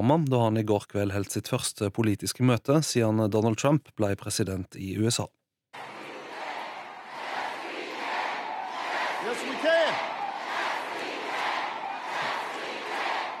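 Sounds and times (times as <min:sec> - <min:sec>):
speech: 0:00.0 - 0:05.9
large crowd chanting a campaign slogan at a campaign rally in Virginia: 0:05.8 - 0:13.3.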